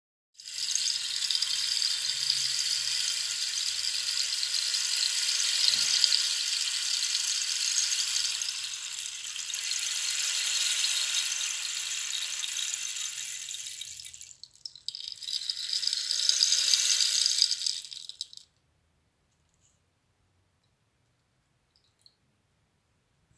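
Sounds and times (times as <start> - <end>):
rainstick gently tilted: 0.5 - 18.4.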